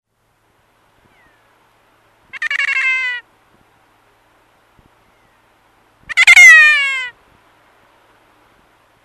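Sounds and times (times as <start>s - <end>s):
kea giving loud harsh drawn-out calls: 2.3s - 3.2s, 6.1s - 7.2s.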